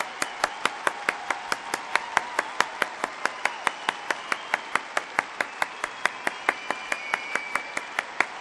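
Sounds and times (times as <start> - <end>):
hands clapping: 0.0 - 8.3.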